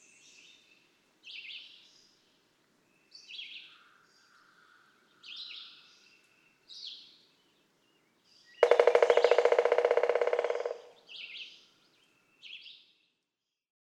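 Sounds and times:
other birds chirping high phrases: 0:07.9 - 0:12.6
Pileated Woodpecker drumming: 0:08.6 - 0:11.3.

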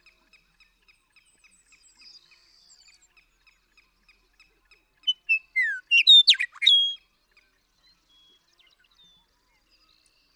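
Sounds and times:
Western meadowlark song with fluty whistles and gurgling flourish: 0:05.0 - 0:07.0.

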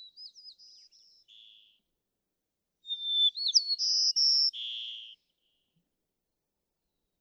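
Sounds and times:
white-crowned sparrow song: 0:00.0 - 0:01.9, 0:02.8 - 0:05.8.

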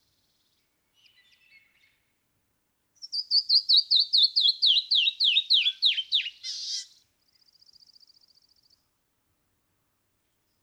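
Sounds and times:
Canyon wren song of clear high whistled notes: 0:03.0 - 0:06.9.

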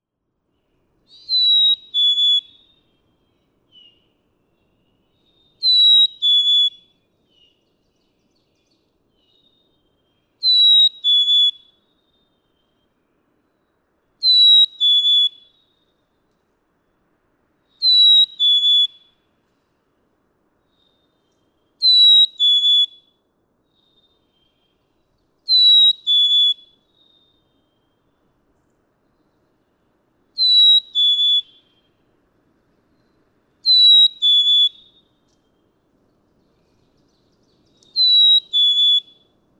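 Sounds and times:
pitch-shifting black-capped chickadee singing in Atlanta Michigan: 0:01.1 - 0:02.8, 0:05.3 - 0:07.6, 0:14.2 - 0:15.5, 0:17.8 - 0:19.0, 0:21.8 - 0:23.0, 0:25.5 - 0:27.2, 0:30.4 - 0:31.8, 0:33.7 - 0:35.0, 0:37.0 - 0:39.2.

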